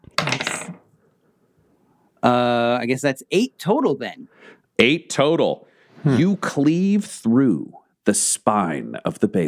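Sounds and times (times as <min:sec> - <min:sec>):
dice rolling across a hard tabletop: 0:00.2 - 0:00.8
speech: 0:02.2 - 0:09.4.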